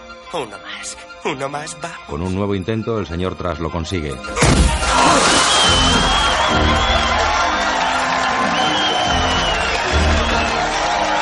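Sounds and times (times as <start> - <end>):
speech: 0.3 - 7.0
paint-filled balloon pierced with a car key bursting: 4.4 - 6.3
crowd cheering and whooping: 4.7 - 11.2.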